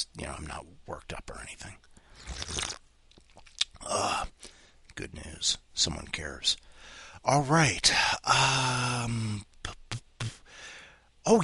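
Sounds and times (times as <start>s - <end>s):
speech: 0.0s - 2.8s, 3.8s - 9.8s, 11.2s - 11.4s
noisy slurping sips of a hot drink: 2.1s - 2.8s.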